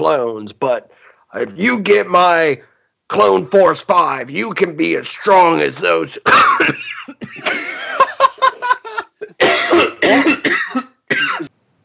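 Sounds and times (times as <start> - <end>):
speech: 0.0 - 8.0
person coughing: 6.2 - 8.1, 8.7 - 11.5
laughter: 7.2 - 9.4.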